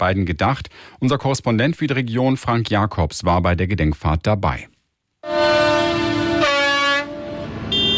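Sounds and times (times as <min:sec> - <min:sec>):
speech: 0:00.0 - 0:04.7
horn blasts from tractors in a memorial convoy rolling past an accident site: 0:05.2 - 0:07.9.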